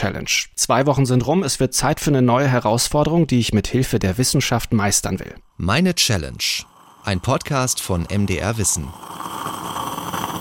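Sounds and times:
speech: 0.0 - 9.9
stovetop espresso maker gurgling and hissing as coffee boils: 5.5 - 10.4.

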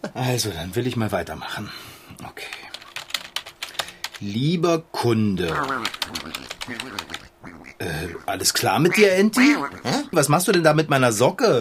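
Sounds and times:
speech: 0.2 - 2.7, 4.2 - 11.5
typing on a keyboard: 2.4 - 4.2, 5.4 - 7.2
steady voiced quack-like sound: 5.5 - 10.2.

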